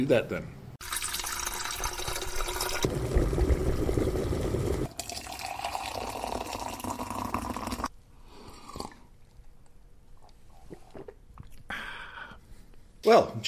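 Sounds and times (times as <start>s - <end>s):
speech: 0.0s - 0.6s, 13.1s - 13.4s
water poured while making tea: 0.8s - 7.9s.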